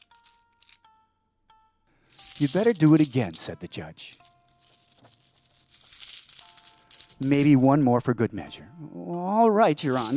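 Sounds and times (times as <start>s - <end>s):
coins shaken in a young man's hand: 0.0s - 0.8s, 2.1s - 3.4s, 4.1s - 7.7s, 9.8s - 10.1s
speech: 2.4s - 4.2s, 7.2s - 10.1s.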